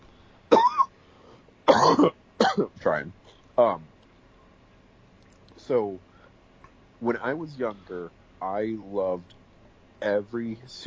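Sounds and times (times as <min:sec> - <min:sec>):
sharp coughs: 0:00.5 - 0:00.9, 0:01.7 - 0:02.8
speech: 0:01.9 - 0:03.9, 0:05.6 - 0:06.1, 0:07.0 - 0:09.4, 0:10.0 - 0:10.8.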